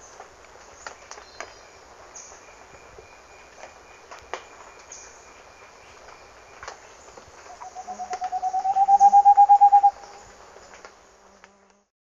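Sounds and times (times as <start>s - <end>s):
Moustached Antpitta hollow hoots in Ecuador: 7.5s - 10.2s.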